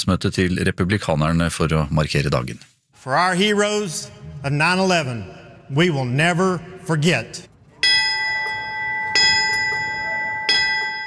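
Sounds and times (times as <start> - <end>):
speech: 0.0 - 7.5
single ceremonial bell tolling: 7.8 - 11.0.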